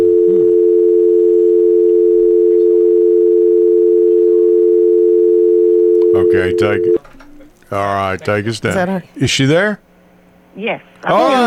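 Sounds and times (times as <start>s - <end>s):
telephone dial tone: 0.0s - 7.0s
speech: 6.3s - 9.9s, 10.6s - 11.4s.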